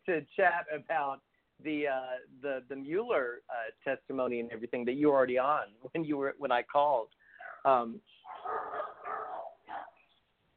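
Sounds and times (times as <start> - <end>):
speech: 0.1 - 8.9
miniature dachshund barking in a dog fight: 7.4 - 10.0
dogs snarling and growling in a fight: 8.3 - 10.0.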